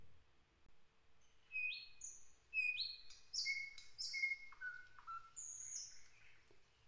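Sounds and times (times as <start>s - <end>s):
several birds singing in spring with whistled notes and chirps: 1.5s - 6.3s.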